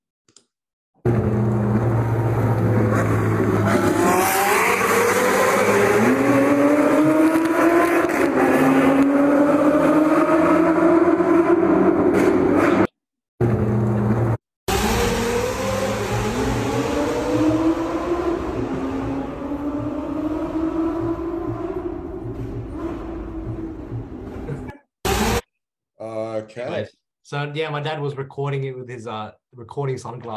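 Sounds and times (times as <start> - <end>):
sports car engine accelerating through a tunnel with gear shifts: 1.1 - 25.4
speech: 27.4 - 30.3.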